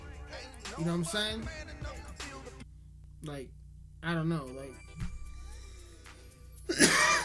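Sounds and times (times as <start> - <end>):
speech: 0.8 - 1.7, 3.2 - 5.1
person coughing after taking a dab hit: 6.7 - 7.2.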